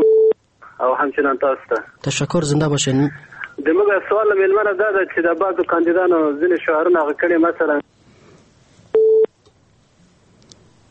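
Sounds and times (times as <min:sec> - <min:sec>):
speech: 0:00.8 - 0:07.9
telephone busy tone after a call was disconnected: 0:09.0 - 0:09.3.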